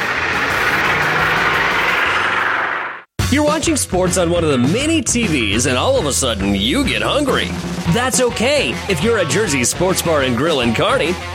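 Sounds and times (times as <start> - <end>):
heavy tractor engine droning: 0.0 - 3.1
speech: 3.3 - 11.3.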